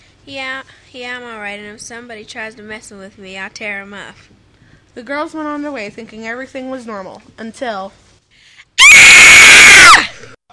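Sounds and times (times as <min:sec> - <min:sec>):
speech: 0:00.2 - 0:04.4, 0:05.0 - 0:08.0
woman screaming: 0:08.8 - 0:10.2.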